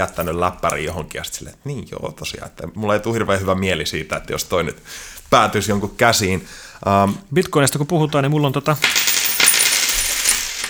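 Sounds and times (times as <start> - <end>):
speech: 0.0 - 9.0
physical bitcoin coin dropping onto a hard tabletop: 8.7 - 10.6.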